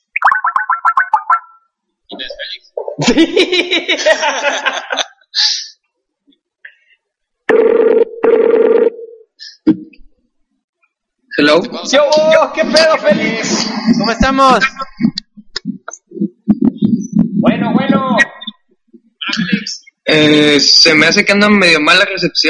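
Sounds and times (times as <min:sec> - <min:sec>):
short electronic effects and warbling tones: 0:00.0 - 0:01.7, 0:12.5 - 0:18.6
speech: 0:02.3 - 0:05.5, 0:11.4 - 0:15.2, 0:20.1 - 0:22.4
laughter: 0:02.9 - 0:05.2, 0:12.2 - 0:15.2
telephone ringing with an incoming call: 0:07.5 - 0:09.2.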